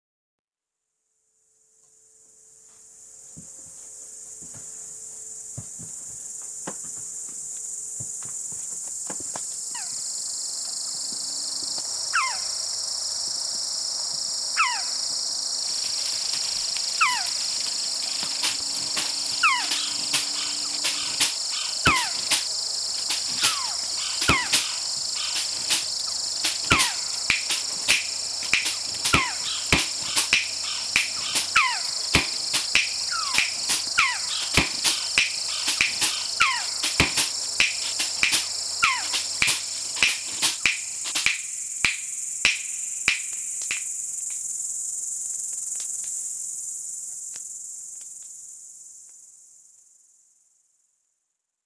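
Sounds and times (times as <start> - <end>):
night birds calling: 9.6 - 13.2, 14.3 - 44.2.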